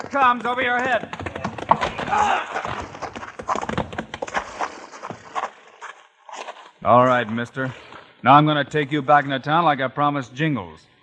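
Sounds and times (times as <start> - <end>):
hoofbeats of a galloping horse: 0.0 - 8.1
speech: 0.1 - 1.2, 1.8 - 3.7, 6.8 - 10.9.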